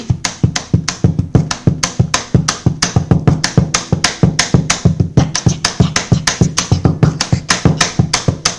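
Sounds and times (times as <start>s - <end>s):
hand tapping on the wooden body of an acoustic guitar: 0.0s - 8.5s.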